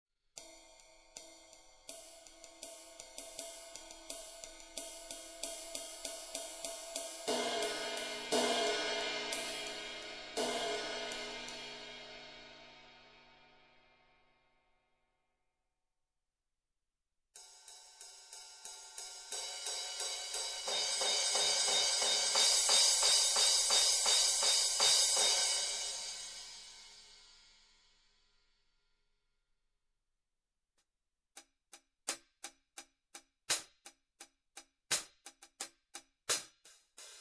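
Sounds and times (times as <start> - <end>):
hi-hat: 0.4 - 11.8, 17.5 - 27.5, 34.9 - 37.1
ride cymbal: 0.4 - 12.9, 17.4 - 28.2.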